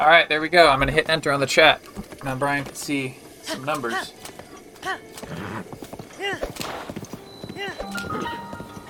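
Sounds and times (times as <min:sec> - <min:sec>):
speech: 0:00.0 - 0:06.9
horse hooves clip-clopping along a road: 0:00.6 - 0:08.8.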